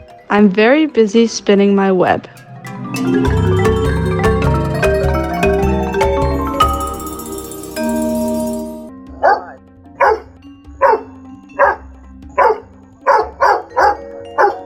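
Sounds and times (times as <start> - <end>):
upbeat instrumental music: 0.0 - 14.6
speech: 0.3 - 2.4, 3.0 - 4.1
dog barking sharply: 9.2 - 14.6.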